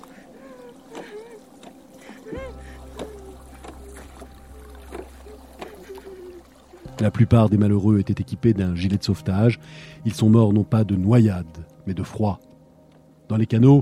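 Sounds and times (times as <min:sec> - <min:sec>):
faint wordless human voices moaning: 0:00.0 - 0:07.0
oars rowing a boat through choppy water: 0:00.0 - 0:08.2
low rumble of waves: 0:00.0 - 0:13.7
speech: 0:07.0 - 0:12.5, 0:13.3 - 0:13.7.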